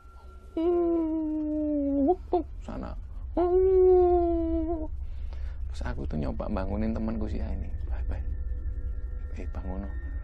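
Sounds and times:
voice imitating a howling dog: 0:00.6 - 0:02.4, 0:03.4 - 0:04.9
speech: 0:02.3 - 0:04.9, 0:05.8 - 0:08.3, 0:09.4 - 0:10.0.

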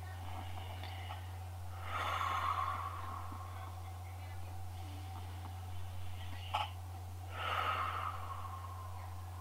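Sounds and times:
steady low electrical hum: 0:00.0 - 0:09.3
deep inhale and long exhale during a breathing exercise: 0:00.3 - 0:03.6, 0:07.2 - 0:09.1.

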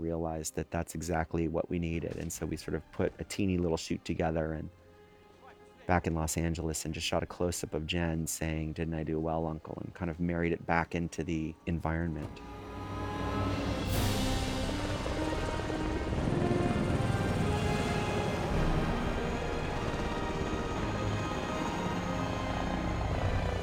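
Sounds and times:
speech: 0:00.1 - 0:04.8, 0:05.9 - 0:13.2
helicopter engine and rotor roaring: 0:12.2 - 0:23.6.

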